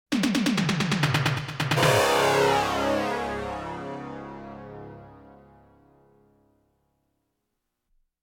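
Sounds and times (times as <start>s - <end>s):
science fiction space rock music: 0.2s - 5.6s.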